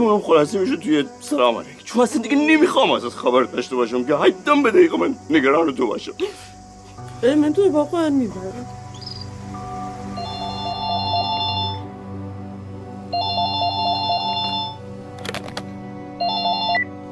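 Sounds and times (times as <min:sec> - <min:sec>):
speech: 0:00.0 - 0:06.5, 0:07.2 - 0:08.8
mobile phone ringtone electronic melody: 0:10.2 - 0:11.9, 0:13.1 - 0:14.8, 0:16.2 - 0:17.0.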